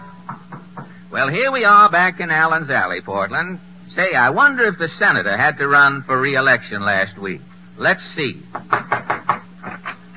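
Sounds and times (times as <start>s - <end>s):
low steady hum: 0.0s - 10.1s
knocking on a door: 0.2s - 1.0s, 8.5s - 9.8s
speech: 1.2s - 9.2s.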